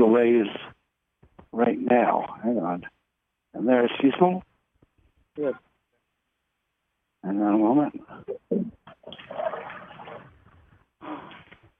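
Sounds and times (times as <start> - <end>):
speech: 0.0 - 0.7, 1.5 - 3.0, 3.6 - 4.5, 5.4 - 5.7, 7.2 - 9.8
toilet flushing with rushing water: 9.0 - 10.4.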